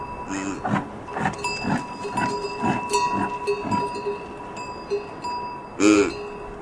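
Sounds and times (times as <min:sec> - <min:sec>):
yak: 0:00.3 - 0:04.0, 0:05.8 - 0:06.2.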